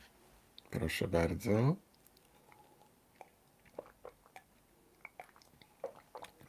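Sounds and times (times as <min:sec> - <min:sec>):
speech: 0:00.7 - 0:01.9
sipping water from a copper cup: 0:02.0 - 0:06.4.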